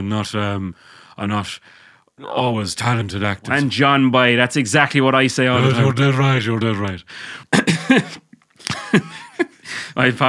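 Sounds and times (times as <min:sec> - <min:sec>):
speech: 0:00.0 - 0:08.2, 0:08.9 - 0:09.2, 0:10.0 - 0:10.2
laughter: 0:05.4 - 0:06.6, 0:07.5 - 0:10.2
person coughing: 0:07.5 - 0:09.5.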